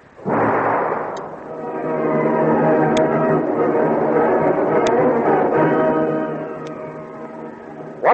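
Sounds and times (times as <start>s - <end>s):
sustained roaring rumble with tonal layers: 0.1s - 8.1s
bomb thrown and exploding in a radio drama: 0.2s - 2.0s.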